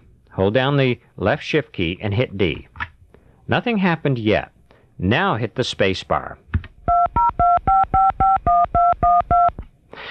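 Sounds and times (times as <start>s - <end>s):
speech: 0.4s - 2.7s, 3.5s - 6.4s
touch-tone DTMF dialing beeps from a Braille Mate built-in speaker: 6.9s - 9.6s.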